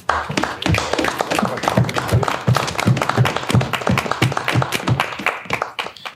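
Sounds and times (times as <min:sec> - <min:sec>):
hockey players clapping rhythmically together: 0:00.0 - 0:06.1.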